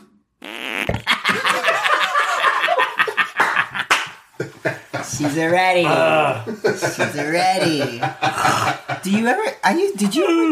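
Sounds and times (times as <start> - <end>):
loud buzzy fart: 0.4 - 1.3
speech: 0.9 - 1.5, 5.2 - 10.5
dense noisy burst of laughter: 1.0 - 5.8, 6.4 - 9.4
overlapping voices: 1.2 - 7.0.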